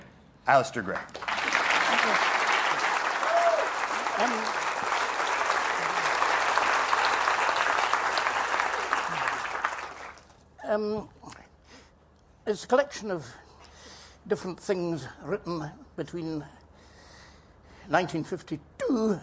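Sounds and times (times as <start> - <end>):
speech: 0.5 - 1.3, 2.0 - 2.4, 4.2 - 4.6, 10.7 - 11.4, 12.5 - 13.4, 14.3 - 16.6, 17.9 - 19.2
sustained applause from a sizable audience: 1.1 - 10.3.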